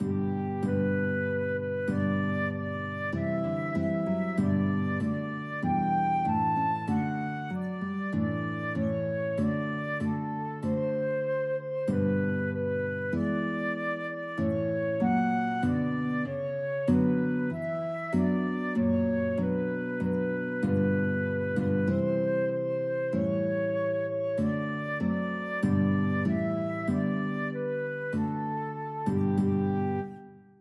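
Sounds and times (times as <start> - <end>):
guitar and flute duet playing a hymn: 0.0 - 30.6.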